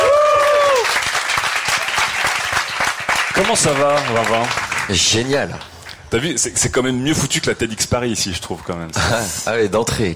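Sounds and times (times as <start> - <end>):
audience applause for a guest being introduced: 0.0 - 5.3
speech: 3.5 - 10.1.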